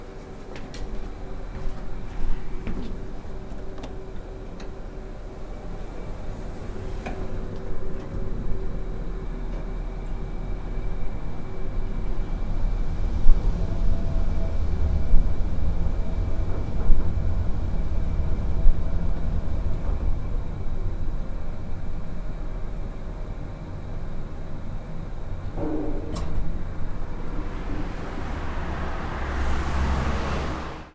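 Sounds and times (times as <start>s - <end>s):
elevator descending: 0.0s - 30.9s.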